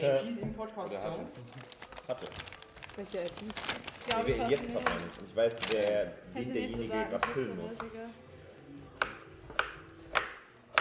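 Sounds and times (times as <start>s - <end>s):
speech: 0.0s - 8.3s
large kitchen knife chopping food on a board: 7.2s - 7.9s, 9.0s - 10.8s.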